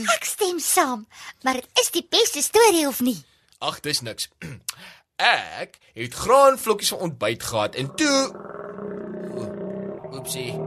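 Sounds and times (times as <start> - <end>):
speech: 0.0 - 8.8, 10.2 - 10.6
stomach growling from hunger: 7.6 - 10.6.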